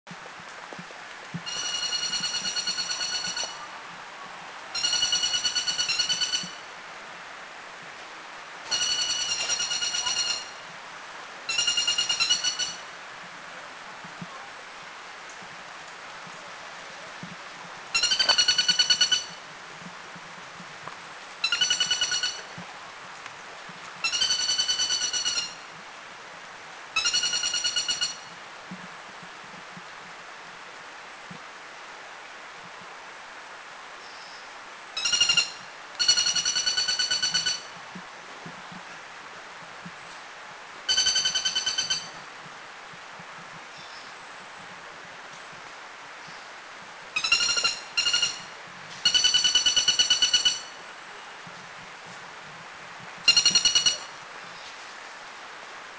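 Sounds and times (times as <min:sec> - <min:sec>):
Greater Flameback calling in Thailand: 0:01.5 - 0:03.6, 0:04.8 - 0:06.6, 0:08.7 - 0:10.6, 0:11.5 - 0:12.8, 0:18.0 - 0:19.4, 0:21.4 - 0:22.5, 0:24.0 - 0:25.6, 0:27.0 - 0:28.2, 0:35.0 - 0:37.7, 0:40.9 - 0:42.2, 0:47.2 - 0:50.8, 0:53.3 - 0:54.2.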